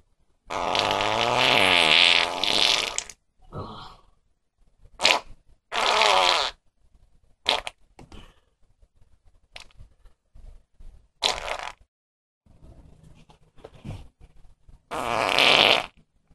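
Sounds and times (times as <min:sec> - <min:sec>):
fart: 0:00.5 - 0:03.2, 0:05.0 - 0:06.6, 0:07.4 - 0:07.8, 0:11.2 - 0:11.9, 0:14.9 - 0:16.0.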